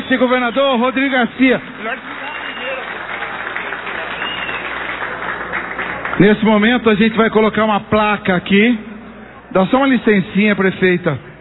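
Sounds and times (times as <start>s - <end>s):
crowd applauding: 0.0s - 7.4s
speech: 0.1s - 2.3s, 6.2s - 8.9s, 9.5s - 11.3s.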